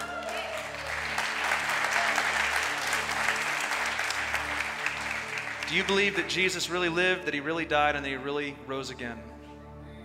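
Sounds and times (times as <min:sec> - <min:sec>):
large congregation applauding: 0:00.0 - 0:07.0
speech: 0:05.7 - 0:09.3.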